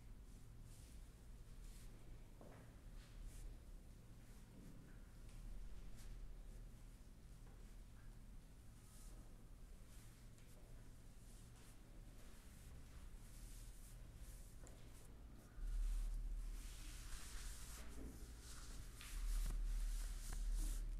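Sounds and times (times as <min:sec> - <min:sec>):
low steady hum: 0:00.0 - 0:20.9
hands rubbing and brushing over skin, hair and clothing in a chair massage: 0:11.2 - 0:20.9.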